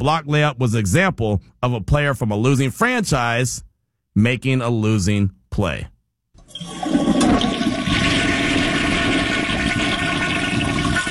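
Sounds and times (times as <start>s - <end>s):
speech: 0.0s - 5.9s
toilet flushing: 6.4s - 11.0s.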